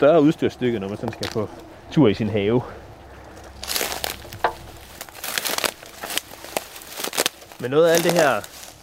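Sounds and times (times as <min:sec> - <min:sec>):
speech: 0:00.0 - 0:02.8, 0:07.6 - 0:08.6
footsteps crunching over dry dead branches and twigs: 0:03.0 - 0:08.8.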